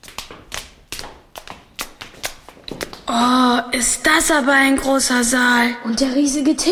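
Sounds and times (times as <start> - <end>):
hard-soled footsteps climbing stairs into a knights' hall: 0.0 - 3.2
speech: 3.1 - 6.7.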